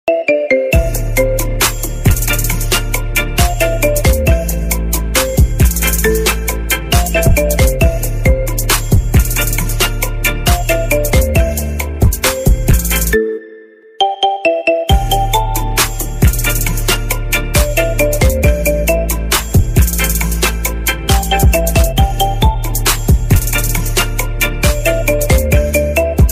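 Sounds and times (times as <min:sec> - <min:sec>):
iPhone 11 Pro ringtone remix: 0:00.0 - 0:26.3.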